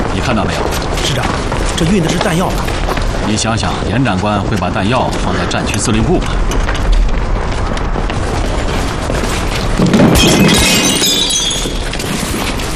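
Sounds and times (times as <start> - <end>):
steady loud rumbling noise: 0.0 - 11.1
speech: 0.2 - 6.8, 10.2 - 11.0
valuable object dropped and smashing: 9.8 - 12.7.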